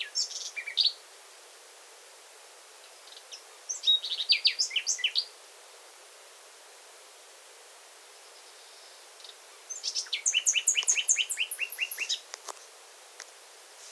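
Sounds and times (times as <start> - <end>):
Common nightingale Luscinia megarhynchos song of rapid high varied notes and trills: 0.0 - 1.0, 2.8 - 5.4, 8.1 - 12.8.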